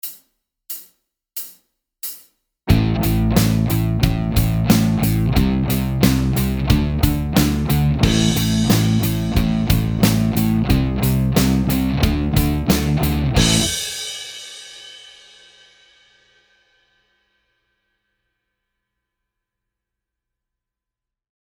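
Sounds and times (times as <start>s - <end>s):
guitar in A minor: 2.7s - 14.0s.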